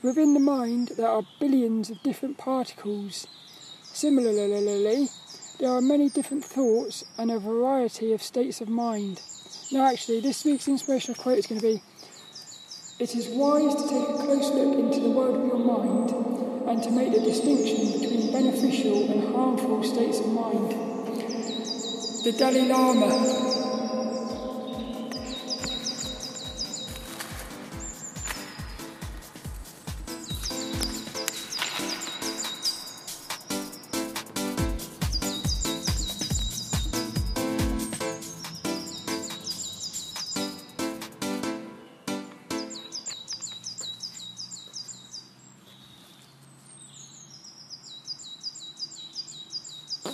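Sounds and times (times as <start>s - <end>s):
speech: 0.0s - 12.0s, 13.0s - 20.9s, 22.2s - 23.6s
small bird chirping in a tree: 0.0s - 40.8s, 42.6s - 50.1s
low rhythmic thumps: 13.6s - 41.4s
rustling: 26.7s - 33.0s.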